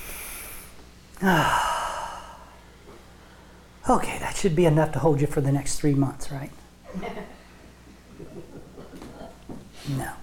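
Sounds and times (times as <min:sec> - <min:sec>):
big deep breath with a long voiced exhale: 0:00.0 - 0:02.6
speech: 0:01.2 - 0:01.7, 0:03.9 - 0:07.1.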